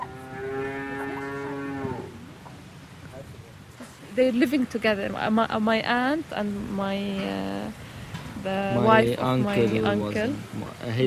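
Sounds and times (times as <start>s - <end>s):
cow mooing on a family dairy farm: 0.0s - 2.3s
quiet outdoor noise: 0.0s - 11.0s
speech: 4.2s - 7.8s, 8.4s - 11.0s.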